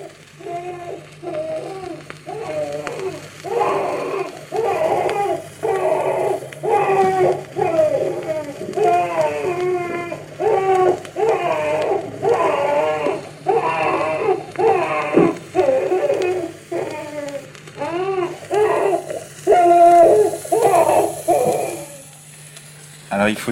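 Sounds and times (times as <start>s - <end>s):
children crying: 0.0s - 22.0s
faint hum: 0.0s - 23.5s.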